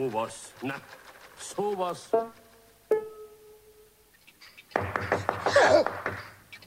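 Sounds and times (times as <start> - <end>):
speech: 0.0 - 2.4
knocking on a door: 4.8 - 6.3.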